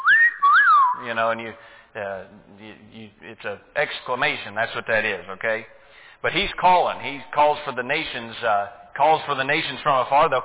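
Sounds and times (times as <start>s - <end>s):
person whistling: 0.0s - 1.1s
speech: 1.0s - 10.4s.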